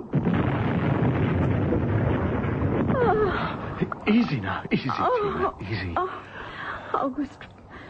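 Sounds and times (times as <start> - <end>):
deep roar of a bomb explosion: 0.0 - 5.6
speech: 3.4 - 7.5.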